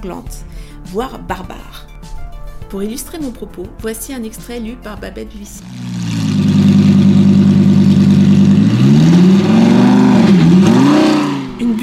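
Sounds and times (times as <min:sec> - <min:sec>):
speech: 0:00.0 - 0:01.9, 0:02.7 - 0:06.5
1967 Skylark car engine droning, approaching at speed: 0:05.6 - 0:11.8.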